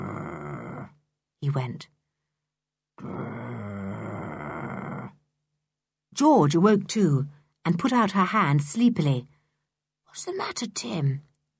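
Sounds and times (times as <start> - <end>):
person imitating a dog growling deeply: 0.0 - 1.0, 3.0 - 5.2
speech: 1.5 - 2.0, 6.2 - 9.3, 10.1 - 11.3.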